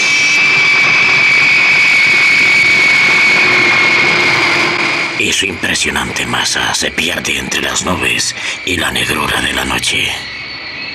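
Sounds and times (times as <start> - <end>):
private jet engine roaring with high-pitched whine taking off: 0.0 - 10.9
speech: 5.4 - 10.4.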